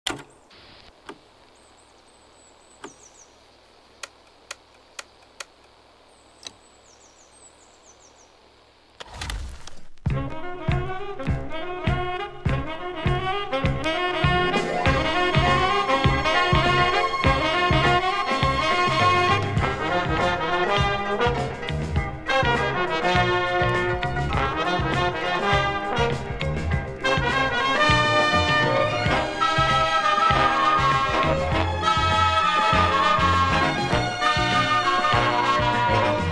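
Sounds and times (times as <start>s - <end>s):
disco, funk and jazz music: 10.0s - 36.3s.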